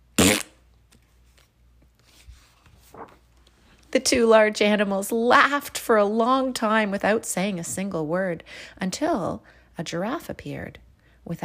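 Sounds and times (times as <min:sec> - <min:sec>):
loud fart blast: 0:00.0 - 0:00.6
quiet rustling: 0:00.8 - 0:04.0
speech: 0:04.0 - 0:11.4.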